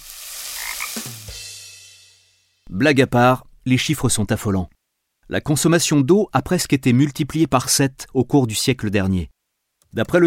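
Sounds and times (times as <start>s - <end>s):
outdoor hiss: 0.0s - 10.2s
frog croaking: 0.6s - 1.0s
speech: 2.7s - 10.2s.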